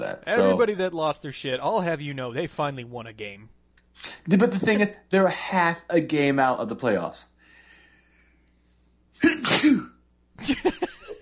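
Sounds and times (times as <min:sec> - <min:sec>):
speech: 0:00.0 - 0:07.3, 0:09.2 - 0:10.9
person sneezing: 0:09.2 - 0:10.0.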